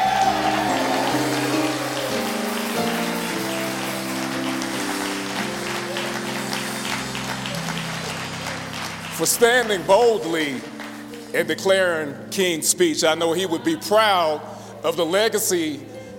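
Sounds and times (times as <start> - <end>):
crowd applauding: 0.0 - 11.4
organ-like chords: 0.0 - 16.1
speech: 9.2 - 10.7, 11.3 - 16.1.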